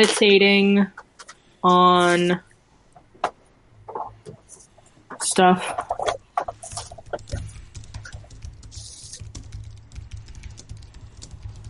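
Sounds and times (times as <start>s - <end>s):
speech: 0.0s - 1.0s, 1.6s - 2.5s, 5.2s - 6.2s
typing on a computer keyboard: 5.1s - 11.6s.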